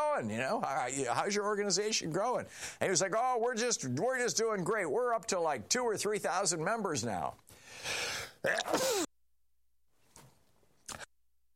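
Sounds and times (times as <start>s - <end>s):
speech: 0.2s - 9.0s
loud sneeze: 8.4s - 9.1s.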